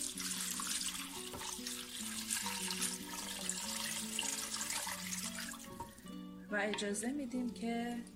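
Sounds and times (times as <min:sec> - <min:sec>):
water pouring into a stew pot of sautéed meat and onions: 0:00.0 - 0:06.1
soft tonal music: 0:00.0 - 0:08.1
speech: 0:06.5 - 0:08.1.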